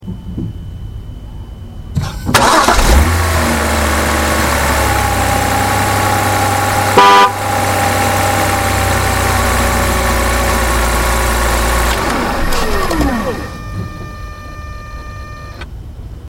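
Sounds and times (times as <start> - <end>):
325i Coupe ignition starting outside: 2.0 - 15.8
325i Coupe horn outside: 6.7 - 8.1, 13.2 - 15.6.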